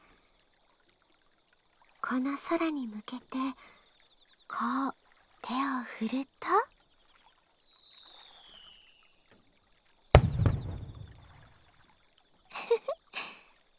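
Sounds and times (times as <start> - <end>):
speech: 2.1 - 3.8, 4.5 - 6.7
firework whistling in the sky: 7.4 - 9.0, 10.2 - 11.4
firework bang with long decaying rumble in the sky: 10.2 - 11.4.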